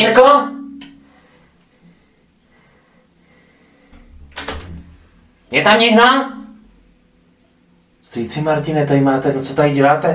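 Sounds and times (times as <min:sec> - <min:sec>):
speech: 0:00.0 - 0:00.6, 0:05.5 - 0:06.4, 0:08.1 - 0:10.1
door opening with a low thud: 0:04.0 - 0:04.9.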